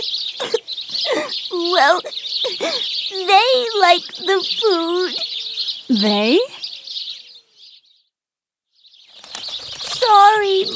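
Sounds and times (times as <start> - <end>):
flock of small birds chirping while feeding: 0.0 - 8.1, 8.7 - 10.7
speech: 1.5 - 5.3, 5.9 - 6.6, 10.0 - 10.7
wings fluttering: 9.0 - 10.7.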